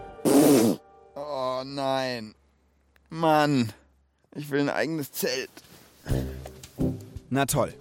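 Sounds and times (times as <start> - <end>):
loud raspy fart inside a tent at night: 0.2 - 0.8
speech: 3.1 - 3.8, 4.3 - 6.3, 7.3 - 7.7.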